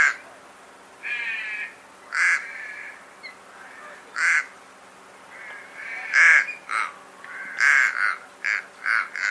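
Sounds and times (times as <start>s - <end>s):
little crow cawing: 0.0s - 0.2s, 1.0s - 3.0s, 4.1s - 4.6s, 5.3s - 9.3s.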